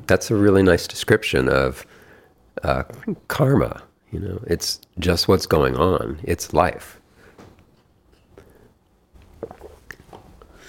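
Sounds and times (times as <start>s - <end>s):
speech: 0.1s - 2.0s, 2.6s - 7.0s
person sipping hot tea: 8.3s - 10.0s.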